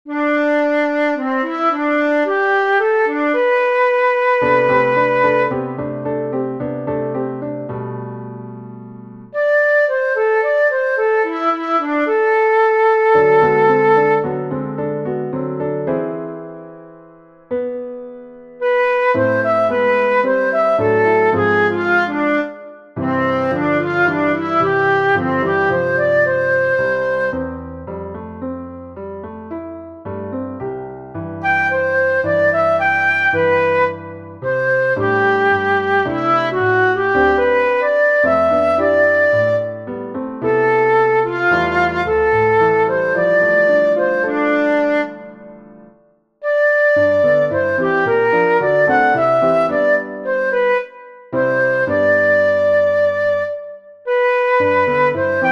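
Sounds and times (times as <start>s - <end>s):
piano: 0.0s - 55.5s
flute: 0.1s - 7.7s, 9.3s - 16.6s, 18.4s - 28.1s, 31.3s - 55.5s.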